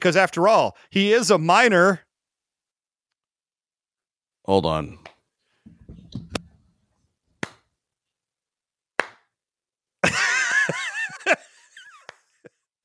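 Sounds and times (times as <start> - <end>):
speech: 0.0 - 2.0, 4.5 - 5.1
sharp isolated hand claps: 7.4 - 7.7, 9.0 - 9.3, 11.9 - 12.4
laughter: 10.0 - 12.6.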